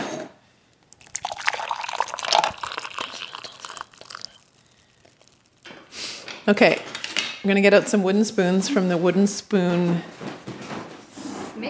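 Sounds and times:
boiling water pouring from a full kettle into a cup: 0.8 - 6.3
speech: 6.4 - 10.3.

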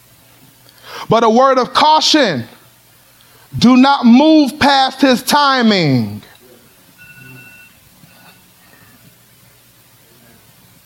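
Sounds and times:
low hum: 0.0 - 10.8
speech: 1.1 - 2.5, 3.5 - 6.3
faint electronic alarm beeping: 7.0 - 8.4.

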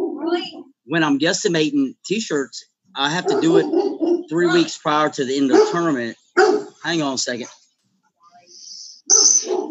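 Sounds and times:
speech: 0.3 - 6.2, 6.8 - 7.6
dog barking: 3.1 - 4.7, 5.5 - 6.8, 9.4 - 9.6.

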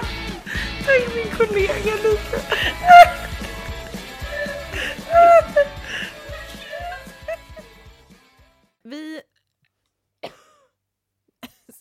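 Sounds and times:
laughter: 0.0 - 7.8
speech: 0.9 - 3.2
cough: 10.2 - 10.8.

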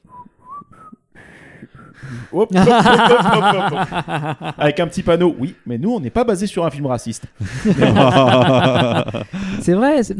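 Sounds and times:
person whistling a light casual tune: 0.0 - 2.0
speech: 2.0 - 10.1
laughter: 2.4 - 4.8, 7.4 - 9.6.

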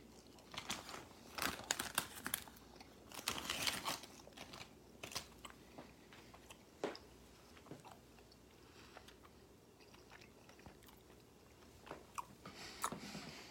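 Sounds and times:
chewing and crunching on a sugary blue candy: 0.0 - 13.0
light candy wrapper crinkling: 0.5 - 5.4.

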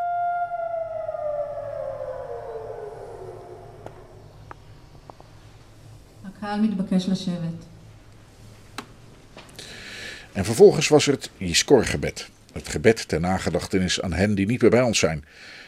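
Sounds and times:
civil defense siren wailing at a remembrance ceremony: 0.0 - 5.5
quiet noise: 0.0 - 15.6
speech: 6.4 - 7.7, 10.4 - 15.6.

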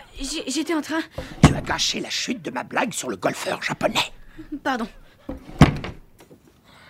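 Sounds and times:
speech: 0.2 - 5.4
door banging shut: 1.2 - 2.0, 4.0 - 6.2.

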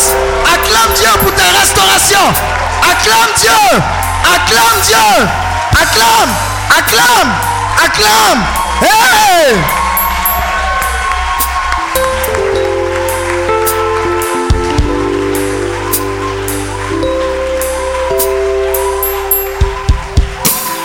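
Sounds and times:
sharp rhythmic hits: 0.0 - 2.6, 9.7 - 10.6, 18.2 - 20.8
crowd shouting and cheering for joy: 0.0 - 20.8
loud music with sustained bass and keyboard tones: 0.0 - 20.8
speech: 2.0 - 9.8.

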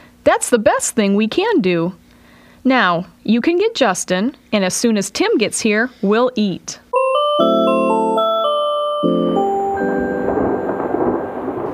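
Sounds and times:
speech: 0.2 - 2.0, 2.6 - 7.5
sustained musical chords: 6.9 - 11.7
thunderstorm rumbling roar: 9.4 - 11.7.

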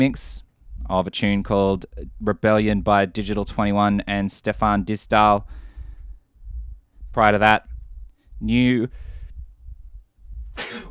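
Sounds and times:
speech: 0.0 - 5.6, 7.2 - 7.7, 8.4 - 9.1
low rumbling: 0.0 - 10.8
breath noise: 4.5 - 10.8
person sneezing: 10.6 - 10.8.

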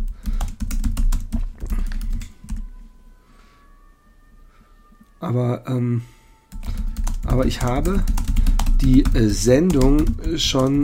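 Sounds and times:
typing on a computer keyboard: 0.0 - 2.6, 6.5 - 10.8
speech: 5.2 - 6.2, 7.4 - 8.2, 8.8 - 10.8.

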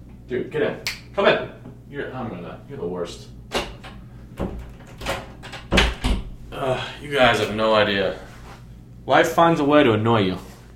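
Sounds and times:
speech: 0.3 - 3.6, 6.6 - 8.3, 9.0 - 10.5
door closing: 3.5 - 6.4.

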